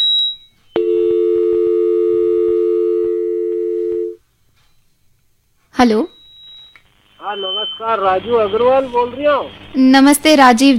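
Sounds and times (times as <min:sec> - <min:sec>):
telephone busy tone after a caller hangs up: 0:00.7 - 0:04.2
speech: 0:05.8 - 0:06.2, 0:07.3 - 0:10.7
brief high telephone beep: 0:06.0 - 0:08.8.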